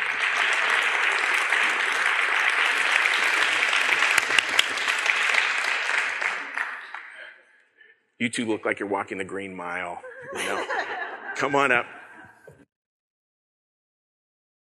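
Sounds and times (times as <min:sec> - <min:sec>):
crowd applauding: 0:00.0 - 0:07.4
speech: 0:08.2 - 0:12.0
laughter: 0:09.7 - 0:12.6.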